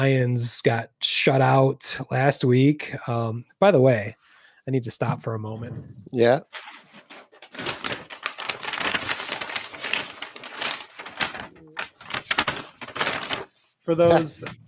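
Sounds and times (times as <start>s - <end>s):
speech: 0.0s - 6.8s, 13.9s - 14.6s
person murmuring: 5.0s - 6.4s
paper bag with eye holes pulled on over a person's head: 6.5s - 14.3s.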